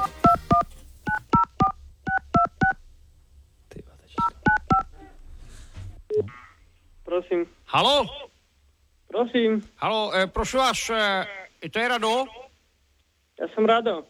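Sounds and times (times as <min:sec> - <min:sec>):
touch-tone beeps of a telephone number being dialed: 0:00.0 - 0:02.8, 0:04.2 - 0:04.9
speech: 0:07.3 - 0:08.2, 0:09.2 - 0:12.4, 0:13.4 - 0:14.0.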